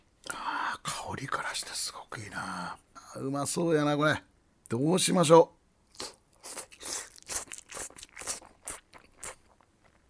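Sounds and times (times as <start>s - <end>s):
speech: 1.1s - 6.2s
crunchy chewing and biting of a hamburg steak in hayashi sauce: 5.9s - 10.0s.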